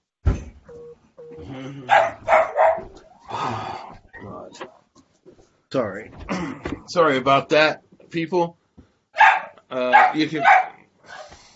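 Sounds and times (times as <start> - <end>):
pet dog barking: 1.9 - 2.9, 9.2 - 11.3
pet dog whining, yelping and whimpering: 1.9 - 3.3
speech: 5.7 - 8.6, 9.7 - 10.6.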